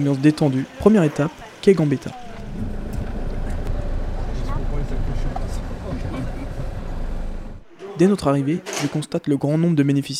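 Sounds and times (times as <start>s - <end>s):
speech: 0.0s - 2.7s, 8.0s - 10.1s
van engine and road rumble from inside a moving van in a convoy: 1.4s - 7.7s.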